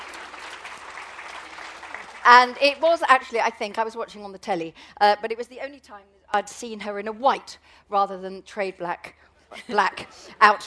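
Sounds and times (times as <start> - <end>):
applause from a sizable crowd before an event: 0.0 - 2.6
speech: 2.3 - 10.6.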